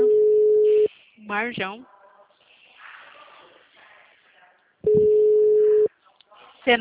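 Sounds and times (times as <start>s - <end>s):
ringback tone of an outgoing mobile phone call: 0.0s - 0.9s, 4.9s - 5.9s
speech: 1.3s - 1.9s.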